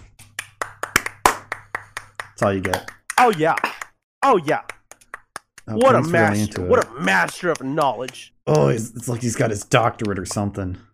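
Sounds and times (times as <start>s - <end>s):
hand claps: 0.0s - 8.8s, 9.8s - 10.5s
speech: 2.4s - 4.7s, 5.7s - 10.9s.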